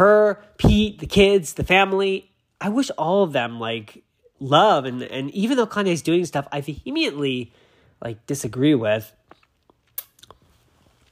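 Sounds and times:
speech: 0.0 - 9.2
wet mouth clicks: 9.3 - 10.5
chewing and swallowing an egg sandwich: 9.3 - 11.0.

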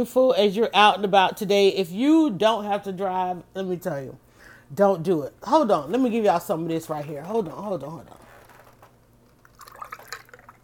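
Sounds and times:
speech: 0.0 - 8.2
faint hum: 0.0 - 10.6
lemonade pouring into a glass: 9.2 - 10.6.

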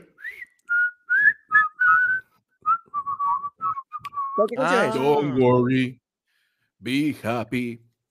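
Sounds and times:
person whistling an ice cream vendor jingle: 0.1 - 4.5
speech: 4.4 - 6.0, 6.8 - 7.8.

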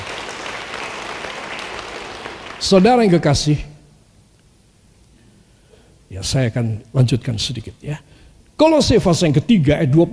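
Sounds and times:
audience applauding: 0.0 - 3.1
speech: 2.6 - 3.7, 6.2 - 10.1.

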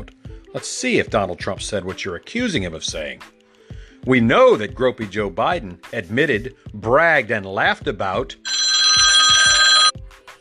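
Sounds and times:
speech: 0.5 - 3.3, 4.0 - 8.6
telephone ringing with bright buzzing electronic tone: 8.5 - 9.9.

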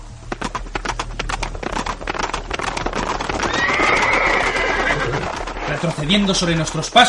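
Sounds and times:
horse hooves clip-clopping: 0.0 - 7.0
horse whinnying: 3.1 - 5.8
speech: 5.8 - 7.0.

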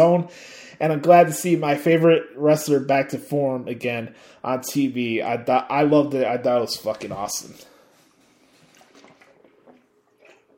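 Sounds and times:
speech: 0.0 - 7.7
person gulping water: 8.6 - 10.5.

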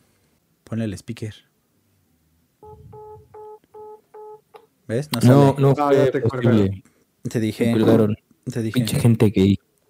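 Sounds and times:
speech: 0.7 - 1.5, 4.9 - 9.6
dual-pitched DTMF beeps of a phone number being keyed in: 2.6 - 4.4.

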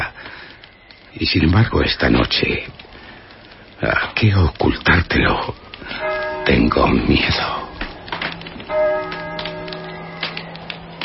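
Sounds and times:
speech: 1.2 - 2.8, 3.8 - 7.6
church bell tolling with deep ringing tone: 5.8 - 11.0.

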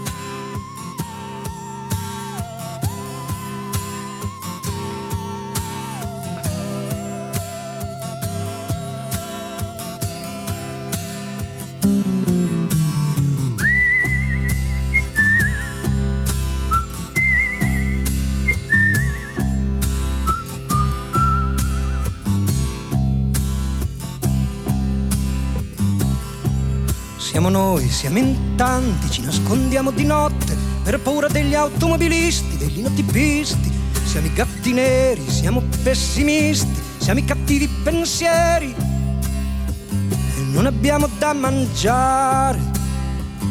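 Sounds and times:
fuller band with heavy bass and drums: 0.0 - 43.4
whistled melody in a 1977 Italian pop song: 0.1 - 9.3, 13.4 - 22.6
speech: 27.6 - 38.8, 40.6 - 42.8.

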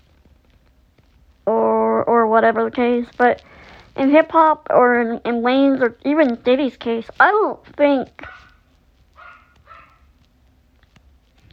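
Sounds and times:
low steady hum: 0.0 - 11.5
speech: 2.3 - 8.4
dog barking: 8.2 - 8.6, 9.2 - 10.1.

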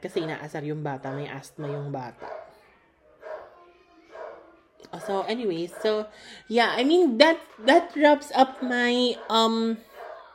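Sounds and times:
speech: 0.0 - 2.4, 4.9 - 9.9
dog barks: 0.1 - 2.6, 3.2 - 4.5, 9.1 - 10.3.

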